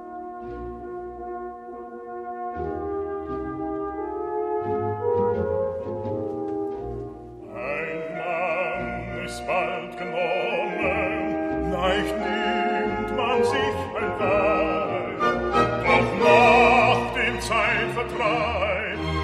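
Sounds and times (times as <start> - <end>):
orchestra accompanying opera: 0.0 - 19.2
opera vocal trio singing: 7.5 - 19.2.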